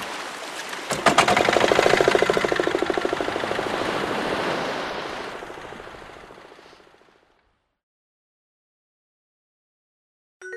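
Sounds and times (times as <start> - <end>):
faint water and wind noise: 0.0 - 7.7
small boat motor starting and chugging, heading out to sea: 0.9 - 3.6.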